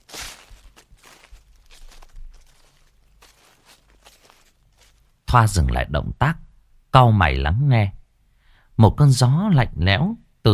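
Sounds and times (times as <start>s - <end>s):
footsteps rustling and crunching over dry leaves outside: 0.0s - 5.3s
speech: 5.3s - 8.0s, 8.8s - 10.5s.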